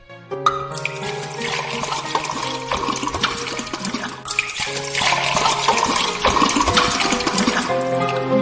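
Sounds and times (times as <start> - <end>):
water pouring into large jars: 0.5 - 8.3.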